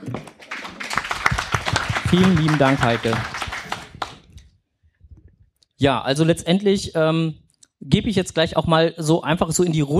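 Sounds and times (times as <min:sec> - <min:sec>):
small audience clapping: 0:00.0 - 0:04.4
speech: 0:02.1 - 0:03.3, 0:05.8 - 0:09.9.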